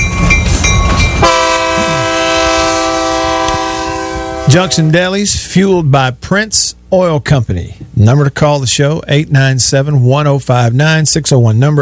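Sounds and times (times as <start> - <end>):
rumble of rolling rail cars: 0.0 - 5.1
train horn sound effect blasting: 0.8 - 5.0
speech: 4.5 - 11.7.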